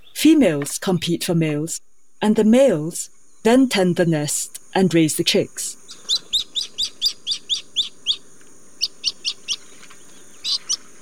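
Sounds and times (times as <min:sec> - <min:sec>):
steady background noise: 0:00.0 - 0:11.0
speech: 0:00.2 - 0:06.2
Jacana sharp chirping calls: 0:05.8 - 0:11.0.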